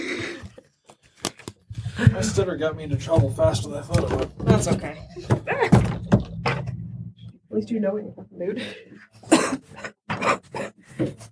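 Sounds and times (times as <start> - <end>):
speech: 2.1 - 6.0, 7.6 - 9.0
harsh raspy coughs: 9.2 - 11.1.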